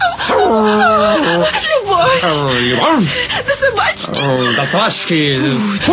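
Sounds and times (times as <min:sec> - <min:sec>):
dog growling loudly: 0:00.2 - 0:03.1
laughter: 0:00.2 - 0:05.9
speech: 0:03.3 - 0:05.9.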